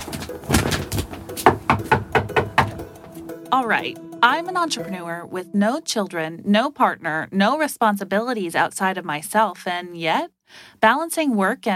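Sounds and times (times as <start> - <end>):
knocking on a front door: 0.3 - 3.0
speech: 3.5 - 11.7.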